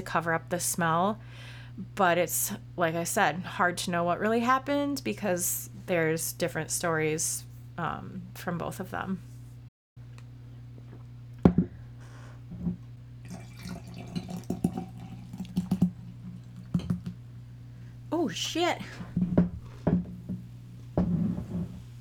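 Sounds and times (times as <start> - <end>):
speech: 0.0 - 9.3, 18.3 - 19.0
steady low hum: 0.0 - 21.9
frothy foamy drink pouring into a glass: 13.3 - 17.1.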